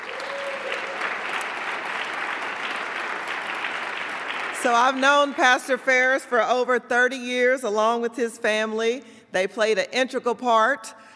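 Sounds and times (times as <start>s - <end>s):
audience applause: 0.0s - 5.4s
speech: 4.6s - 11.1s.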